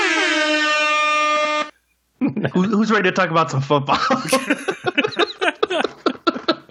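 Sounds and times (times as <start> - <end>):
loud blaring air horn blast: 0.0 - 1.8
speech: 2.3 - 4.8
laughter: 3.9 - 6.6.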